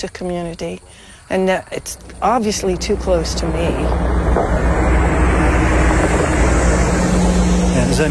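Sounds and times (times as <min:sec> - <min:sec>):
speech: 0:00.0 - 0:04.9, 0:07.9 - 0:08.0
large bus driving past: 0:01.7 - 0:08.0.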